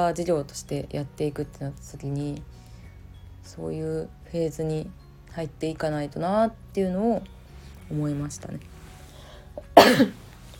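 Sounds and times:
speech: 0.0s - 2.6s, 3.5s - 8.7s, 9.8s - 10.2s
single sharp cough: 9.8s - 10.2s.

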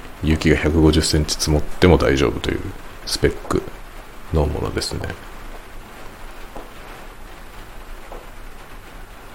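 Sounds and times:
rain on the polycarbonate roof of a garden room: 0.0s - 9.3s
speech: 0.2s - 3.7s, 4.3s - 5.3s.

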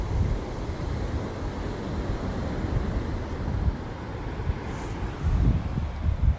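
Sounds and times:
waves breaking on a shore: 0.0s - 6.3s
wind buffeting the microphone: 0.0s - 6.3s.

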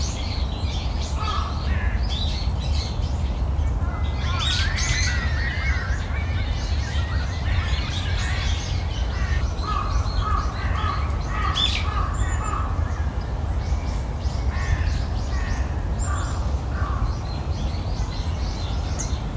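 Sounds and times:
birds chirping in a park: 0.0s - 19.3s
flowing water in a park: 0.0s - 19.3s
birds cawing in a park: 1.0s - 2.3s, 3.8s - 17.6s.

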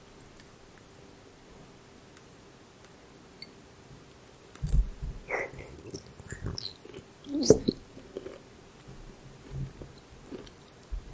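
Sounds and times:
faint steady hum: 0.0s - 11.1s
crunching, smacking and chewing, possibly an animal eating: 4.6s - 11.0s.

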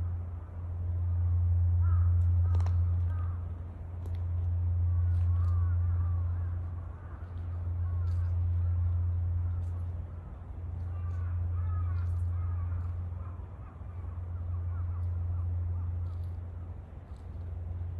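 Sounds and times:
deep low drone at a temple in the morning: 0.0s - 17.9s
faint crow caws at a temple: 1.8s - 3.4s, 4.9s - 9.9s, 10.8s - 16.4s.

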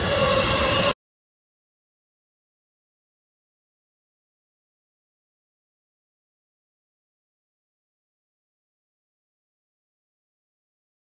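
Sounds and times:
faint metallic whine of a passing train: 0.0s - 1.0s
train roaring past: 0.0s - 1.0s.

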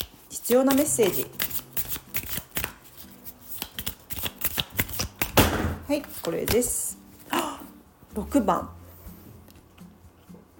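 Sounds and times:
numerology card deck cards handled and drawn: 0.0s - 6.7s
speech: 0.5s - 1.4s, 5.9s - 6.8s, 8.2s - 8.8s.

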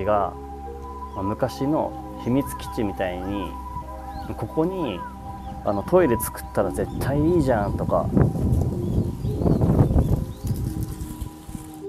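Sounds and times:
speech: 0.0s - 0.4s, 1.2s - 3.6s, 4.3s - 8.8s
faint birds outdoors: 0.0s - 11.4s
wind buffeting the microphone outdoors: 3.5s - 11.8s.

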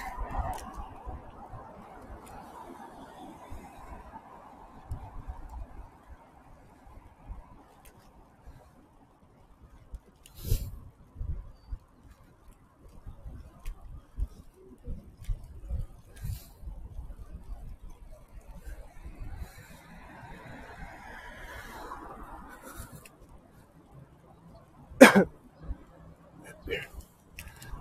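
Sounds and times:
fast cars passing on a bridge: 0.0s - 7.8s, 18.5s - 27.7s
low roar of traffic on a bridge: 0.0s - 27.7s.

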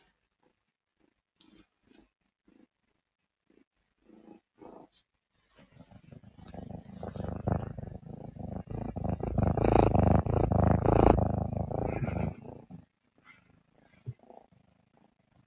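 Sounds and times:
small young cat purring: 0.0s - 15.4s.

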